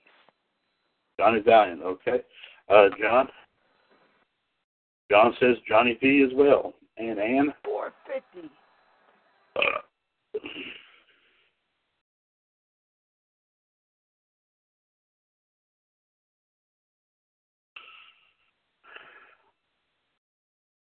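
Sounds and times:
speech: 1.2s - 3.4s, 5.1s - 8.6s, 9.6s - 9.8s
loud raspy belch: 9.6s - 10.6s.

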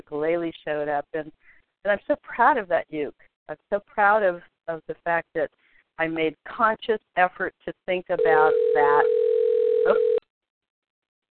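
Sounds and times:
speech: 0.1s - 10.2s
telephone giving a short electronic ring: 8.2s - 10.2s.

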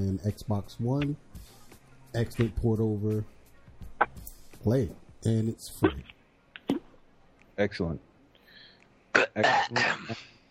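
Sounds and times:
speech: 0.0s - 1.4s, 2.1s - 3.4s, 4.0s - 6.1s, 7.6s - 8.1s, 9.2s - 10.3s
throat clearing: 9.2s - 10.4s.

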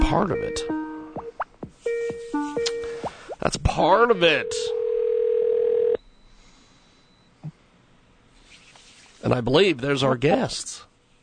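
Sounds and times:
speech: 0.1s - 0.8s, 3.4s - 4.8s, 9.2s - 10.9s
soft blip: 2.6s - 3.0s
telephone dial tone while placing a call: 4.7s - 6.0s.

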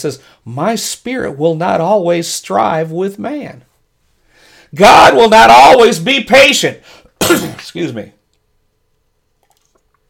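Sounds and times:
speech: 0.0s - 3.7s, 4.7s - 8.2s
low hiss: 0.0s - 10.0s
person sipping water: 9.3s - 10.0s.

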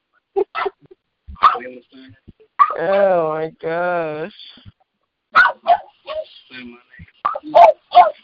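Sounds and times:
cornered dog barking: 0.5s - 0.8s, 1.4s - 1.8s, 2.6s - 2.8s, 5.3s - 6.4s, 7.2s - 8.2s
speech: 1.6s - 4.7s, 6.5s - 6.8s.

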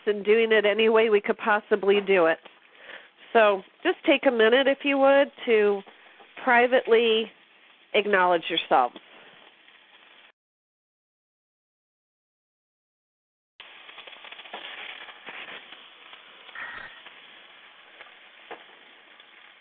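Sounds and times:
speech: 0.0s - 2.5s, 3.3s - 9.0s
bacon sizzling and crackling in a frying pan: 5.9s - 10.3s, 13.6s - 19.5s.

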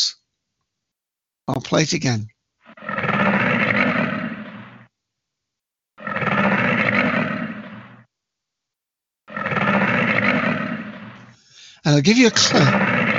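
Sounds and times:
speech: 1.5s - 2.3s, 11.9s - 12.9s
American alligator roaring: 2.6s - 4.9s, 6.0s - 8.1s, 9.3s - 13.1s.

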